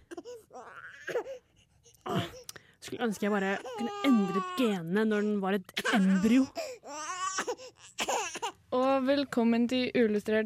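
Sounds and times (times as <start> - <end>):
baby crying: 0.0 - 2.4, 3.2 - 8.6
speech: 2.9 - 6.7, 8.7 - 10.4.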